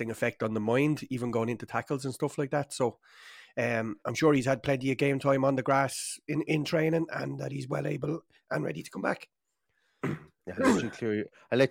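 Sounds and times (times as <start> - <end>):
speech: 0.0 - 9.4, 10.0 - 11.7
person clearing throat in rough gravelly hacks: 10.0 - 11.0.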